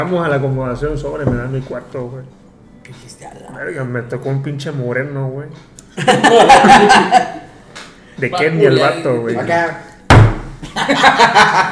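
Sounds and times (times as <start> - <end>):
speech: 0.0 - 7.4, 8.2 - 9.9, 10.8 - 11.7
heavy knock on a door: 1.2 - 1.6, 10.1 - 10.6
laughter: 6.0 - 7.6, 10.6 - 11.7.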